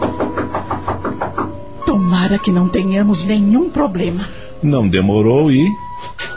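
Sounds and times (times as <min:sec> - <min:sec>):
firm knocking on a house door: 0:00.0 - 0:02.7
speech: 0:02.3 - 0:06.3.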